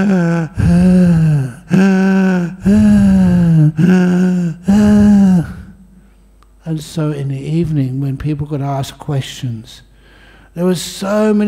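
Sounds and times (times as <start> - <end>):
speech: 0.0 - 2.0, 3.7 - 5.6, 6.7 - 9.9, 10.6 - 11.4
voice imitating a man breathing loudly: 0.0 - 5.8.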